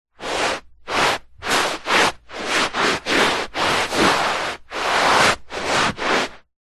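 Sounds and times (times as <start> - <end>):
foley footsteps in socks scuffing on carpet: 0.2 - 6.4.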